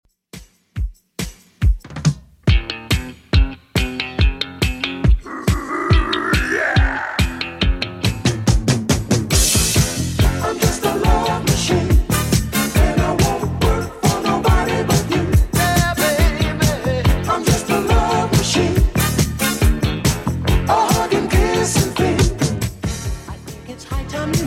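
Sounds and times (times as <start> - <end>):
1970s style drum loop: 0.4 - 24.4.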